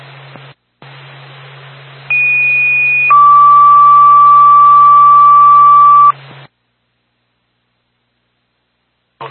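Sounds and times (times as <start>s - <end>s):
fire department dispatch paging tones over a hissy radio channel: 2.1s - 6.1s.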